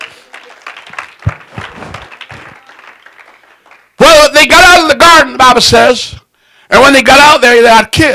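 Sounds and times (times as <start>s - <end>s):
crowd clapping hands in applause: 0.0s - 4.0s
heavier low thumps: 1.2s - 2.6s
speech: 4.4s - 8.1s.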